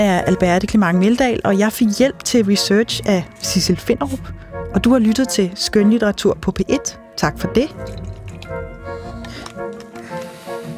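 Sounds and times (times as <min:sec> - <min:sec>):
speech: 0:00.0 - 0:08.7
cola dripping: 0:07.2 - 0:09.8
person slurping the last of a cola: 0:07.7 - 0:10.7.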